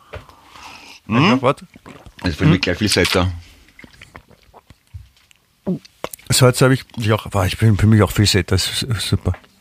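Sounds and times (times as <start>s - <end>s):
slurping gulp of someone sipping water: 1.0s - 4.9s
speech: 1.1s - 3.5s, 5.7s - 9.5s
soft wet mouth clicks: 3.7s - 7.0s.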